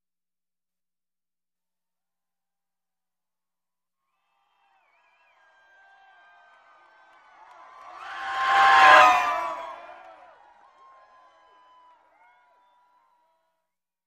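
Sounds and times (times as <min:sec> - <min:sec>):
crowd cheering in a sports arena: 0:04.1 - 0:13.6.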